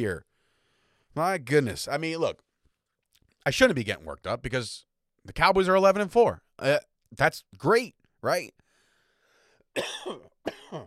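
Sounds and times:
speech: 0.0 - 0.3, 1.2 - 2.5, 3.4 - 8.6, 9.8 - 10.8
faint breathy sound: 0.3 - 1.2, 8.6 - 9.7
harsh coughs: 9.8 - 10.8.

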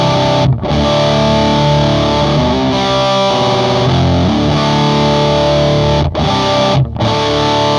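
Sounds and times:
distorted electric guitar played through an amp: 0.0 - 7.7.

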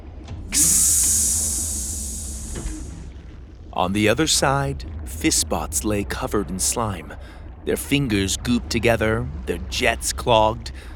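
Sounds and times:
low rumble: 0.0 - 10.9
pneumatic train door opening with a hiss of escaping air: 0.5 - 3.0
speech: 3.8 - 10.9.

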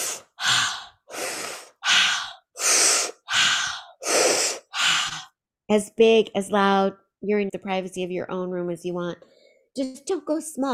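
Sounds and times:
circular breathing in and out through the mouth: 0.0 - 5.3
speech: 5.7 - 10.7.

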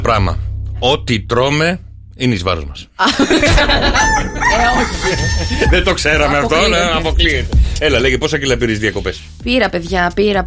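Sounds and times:
speech: 0.0 - 10.4
laughter: 3.0 - 7.4
rooster crowing: 3.6 - 6.0.

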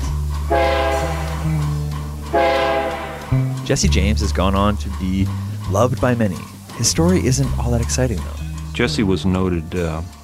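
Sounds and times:
low mechanical drone: 0.0 - 10.2
train rumbling past: 0.0 - 10.2
train horn blasts: 0.5 - 3.6
speech: 3.7 - 10.2.

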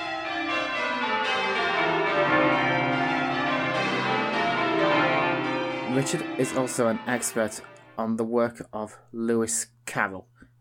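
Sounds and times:
peal of church bells ringing: 0.0 - 8.3
speech: 6.0 - 10.4.

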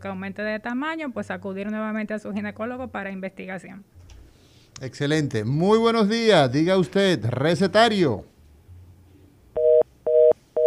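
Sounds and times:
speech: 0.0 - 4.0, 4.8 - 8.3
telephone line tone beeps after a dropped call on a call-in line: 9.6 - 10.6.

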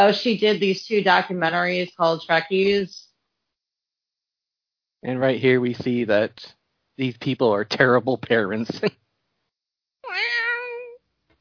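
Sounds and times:
speech: 0.0 - 3.0, 5.0 - 9.0
cat meowing: 10.0 - 11.0.

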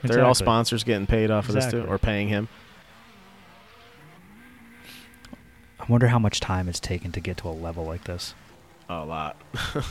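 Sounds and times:
speech: 0.0 - 2.7, 5.9 - 9.8
rally car engine revving while doing donuts: 0.0 - 9.8
rally car tire squeal: 1.8 - 5.9.

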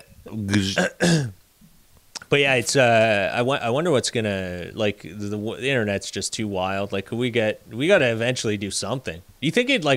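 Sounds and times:
speech: 0.3 - 1.4, 2.3 - 9.9
person coughing or clearing throat: 0.6 - 1.4.

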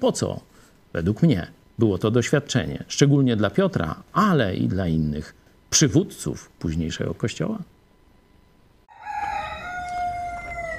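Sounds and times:
speech: 0.0 - 7.7
faint hiss: 0.0 - 8.9
rooster crowing: 8.9 - 10.7.

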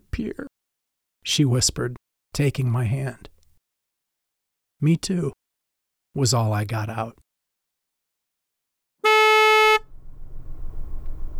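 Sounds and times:
speech: 0.2 - 0.5, 1.2 - 3.3, 4.8 - 5.4, 6.2 - 7.2
car horn blast: 9.0 - 11.3
low rumbling background of traffic or engine noise: 9.5 - 11.3.

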